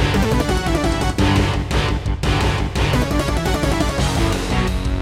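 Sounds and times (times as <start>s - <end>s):
synthesizer intro music in GS mode: 0.1s - 1.9s, 2.8s - 4.8s.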